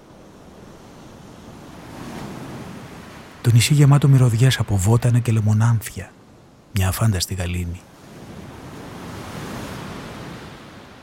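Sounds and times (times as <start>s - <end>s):
faint breeze: 0.0s - 11.0s
sea waves: 0.0s - 11.0s
speech: 3.4s - 6.2s, 6.8s - 7.9s.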